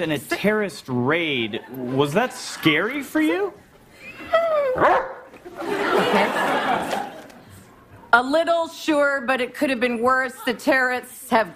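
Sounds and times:
speech: 0:00.0 - 0:03.6, 0:04.8 - 0:05.0, 0:08.1 - 0:11.5
laughter: 0:01.5 - 0:07.7
dog barking at a staged press conference: 0:04.8 - 0:05.3.

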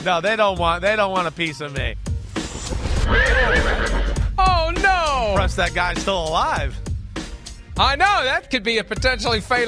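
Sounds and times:
speech: 0:00.0 - 0:02.1, 0:02.7 - 0:06.9, 0:07.8 - 0:09.6
horse neighing: 0:03.0 - 0:04.4.

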